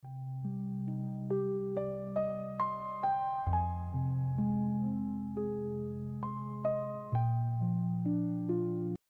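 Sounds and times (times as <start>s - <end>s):
background music: 0.0s - 9.0s.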